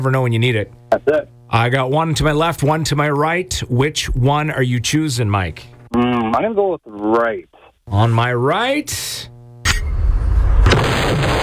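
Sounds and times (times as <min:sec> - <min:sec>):
speech: 0:00.0 - 0:09.3
hand grenade explosion sound effect: 0:10.3 - 0:11.4.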